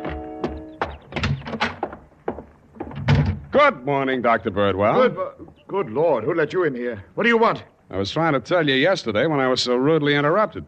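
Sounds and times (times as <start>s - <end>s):
cottage door creaking open: 0.0s - 2.0s, 2.8s - 3.5s
speech: 3.6s - 10.6s.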